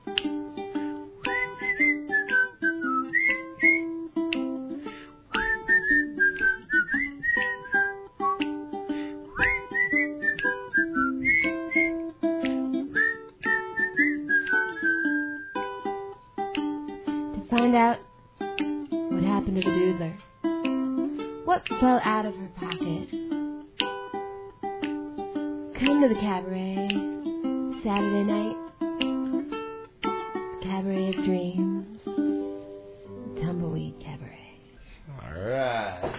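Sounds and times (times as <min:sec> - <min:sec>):
steady instrumental backing music: 0:00.0 - 0:34.9
person whistling a lilting melody: 0:01.2 - 0:15.8.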